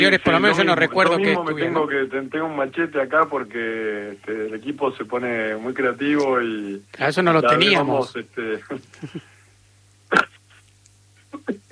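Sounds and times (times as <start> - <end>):
speech: 0.0 - 9.3, 10.1 - 10.3, 11.5 - 11.7
low steady hum: 0.0 - 11.7
sneeze: 10.1 - 10.4.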